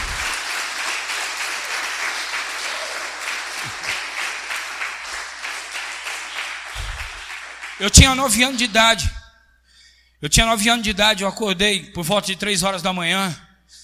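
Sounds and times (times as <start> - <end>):
large audience applauding: 0.0 - 8.3
low thumps: 6.8 - 7.2
speech: 7.8 - 9.2, 10.2 - 13.4.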